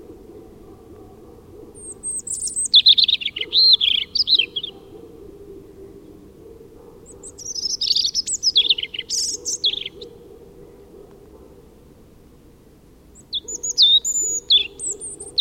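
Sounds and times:
faint low hum: 0:00.0 - 0:02.9, 0:03.5 - 0:07.6, 0:10.0 - 0:13.4
European robin singing: 0:00.0 - 0:10.9, 0:13.1 - 0:15.4.

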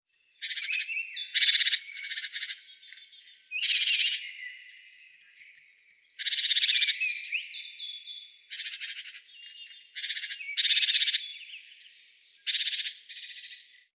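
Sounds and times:
great tit calling in harsh buzzy churring bursts: 0:00.4 - 0:04.3, 0:06.2 - 0:07.5, 0:08.5 - 0:11.4.

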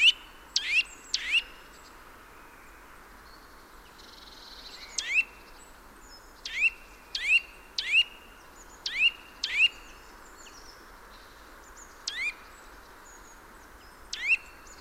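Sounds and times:
Eurasian nuthatch Sitta europaea calls: 0:00.0 - 0:01.6, 0:04.9 - 0:05.3, 0:06.4 - 0:08.2, 0:08.8 - 0:09.8, 0:12.0 - 0:12.5, 0:14.1 - 0:14.7.

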